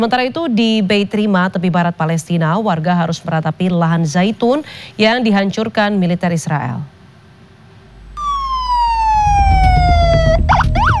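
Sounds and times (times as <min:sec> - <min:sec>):
speech: 0:00.0 - 0:07.0
heavy low ambulance engine rumble: 0:07.8 - 0:10.9
ambulance siren wailing and yelping at a drone strike site in Gaza City: 0:08.0 - 0:10.9.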